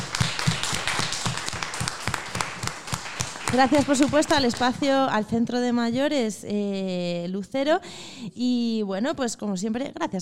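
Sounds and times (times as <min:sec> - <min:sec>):
people applauding at a seniors' centre: 0:00.0 - 0:05.0
speech: 0:03.5 - 0:10.2.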